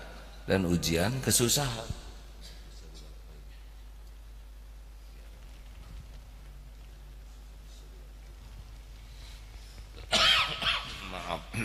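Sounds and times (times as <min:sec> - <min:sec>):
speech: 0:00.5 - 0:02.0
harsh cough during a talk: 0:10.0 - 0:11.6.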